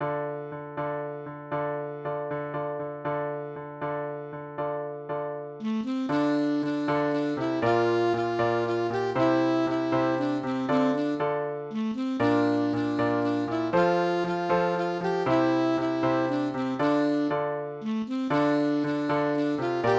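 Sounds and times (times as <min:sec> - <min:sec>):
short piano piece: 0:00.0 - 0:19.9
saxophone: 0:05.6 - 0:19.9.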